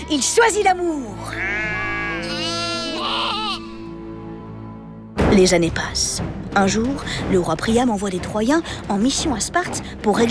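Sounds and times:
speech: 0.1 - 1.9, 5.4 - 10.2
sheep bleating: 1.2 - 3.9.

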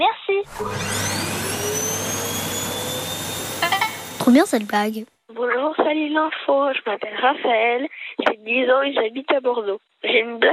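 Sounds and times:
vacuum cleaner running: 0.5 - 4.9
speech: 4.3 - 10.5.

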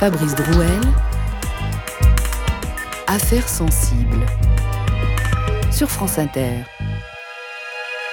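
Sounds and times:
speech: 0.0 - 1.1, 3.1 - 4.4, 5.8 - 6.8
sustained tonal hum: 0.0 - 7.2.

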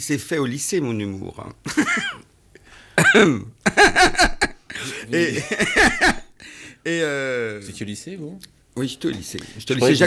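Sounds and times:
speech: 0.0 - 2.3, 3.0 - 6.2, 6.8 - 10.0
audience member coughing: 3.0 - 3.5, 4.4 - 6.3
laughter: 3.7 - 6.3.

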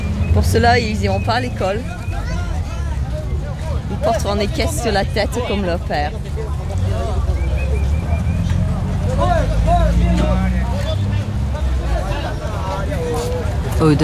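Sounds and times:
dense crowd murmuring and calling out at a riverside fish market: 0.0 - 14.0
fishing boat engines pushing through docked vessels: 0.0 - 14.0
speech: 0.4 - 2.0, 4.0 - 6.6, 9.2 - 10.7, 13.8 - 14.0.

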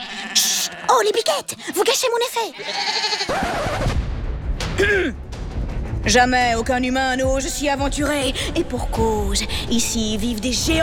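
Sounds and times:
goats bleating: 0.0 - 1.2, 2.6 - 3.4
speech: 0.9 - 3.9, 4.8 - 5.2, 6.0 - 10.8.

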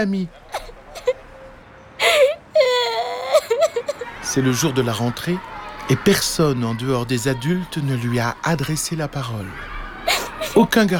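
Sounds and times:
speech: 0.0 - 0.4, 4.3 - 9.7, 10.6 - 10.9
boy walking along the sidewalks crying in wavering wails: 0.5 - 1.2, 2.0 - 4.1
boy whimpering: 2.0 - 4.0.

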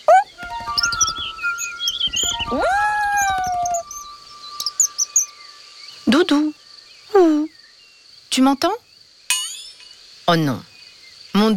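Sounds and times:
birds chirping and whistling: 0.0 - 8.0
speech: 8.4 - 8.8, 10.3 - 10.7.

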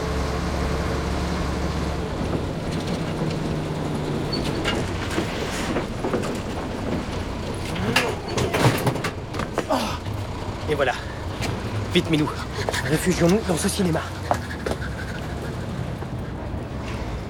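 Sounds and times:
truck engine drone: 0.0 - 17.2
loose rattling and clattering: 2.2 - 12.2
speech: 10.8 - 11.0, 12.0 - 14.4.

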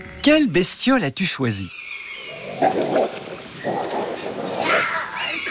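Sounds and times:
speech: 0.2 - 1.8
two wolves growling: 2.3 - 5.4.

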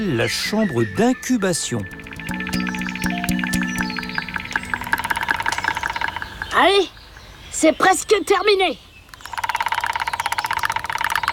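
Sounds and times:
speech: 0.0 - 2.6, 6.6 - 7.0, 7.6 - 8.9
two woodpeckers hammering a tree trunk with their beaks: 1.2 - 6.6, 9.1 - 11.3.

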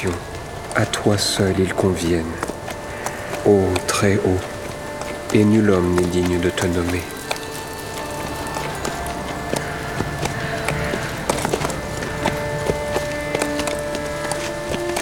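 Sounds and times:
speech: 0.0 - 2.5, 3.4 - 4.5, 5.3 - 7.1
continuous humming background: 0.0 - 14.9
horse hooves clip-clopping: 0.0 - 14.9.

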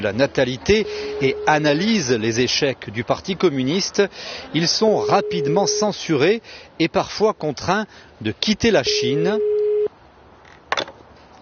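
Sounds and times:
speech: 0.0 - 9.6
telephone ringing tone of a call: 0.8 - 1.7, 5.0 - 5.8.

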